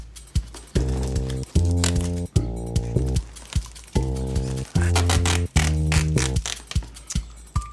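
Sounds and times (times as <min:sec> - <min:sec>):
adhesive tape crackling and snapping: 0:00.4 - 0:07.2
adhesive tape pulled off a roll ripping: 0:00.8 - 0:06.9.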